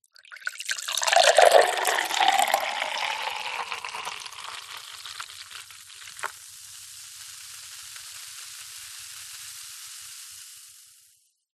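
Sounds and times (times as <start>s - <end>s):
cola pouring into glass: 0.1s - 6.4s
cola fizzing in glass: 0.2s - 11.3s.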